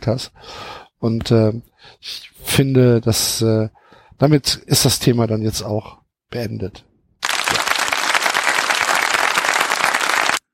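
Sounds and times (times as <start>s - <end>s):
speech: 0.0s - 6.9s
audience applauding: 7.2s - 10.4s.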